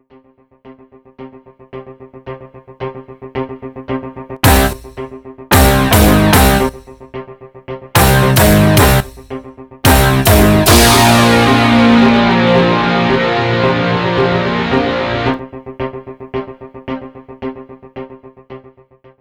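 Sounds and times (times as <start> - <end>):
rock audio logo: 4.4 - 6.9, 8.0 - 9.3, 9.9 - 15.4.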